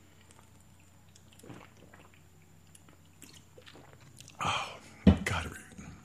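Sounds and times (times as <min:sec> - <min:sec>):
person gulping a canned energy drink: 0:00.0 - 0:04.6.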